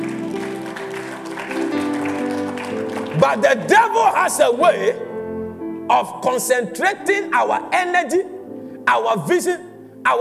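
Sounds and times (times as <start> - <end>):
audience clapping: 0.0 - 4.0
speech: 3.2 - 5.1, 5.9 - 8.3, 8.9 - 10.1.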